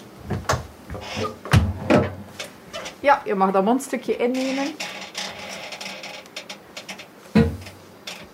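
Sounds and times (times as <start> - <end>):
door being handled and shut: 0.3 - 2.2, 7.3 - 7.7
speech: 1.0 - 1.5, 3.0 - 5.0.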